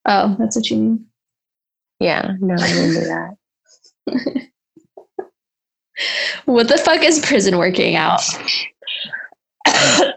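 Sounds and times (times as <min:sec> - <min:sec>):
speech: 0:00.1 - 0:01.1, 0:02.0 - 0:04.5, 0:06.0 - 0:10.1
person coughing: 0:09.6 - 0:10.1.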